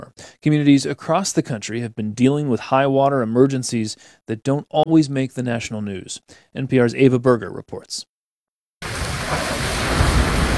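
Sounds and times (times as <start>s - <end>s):
speech: 0.4s - 8.1s
heavy gushing rain in a Tucson, Arizona neighborhood during summer flooding: 8.8s - 10.5s.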